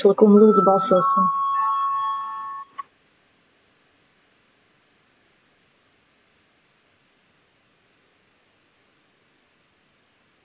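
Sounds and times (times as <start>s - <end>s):
speech: 0.0s - 1.4s
electronic chime in a parliament chamber calling members to a vote: 0.0s - 2.8s.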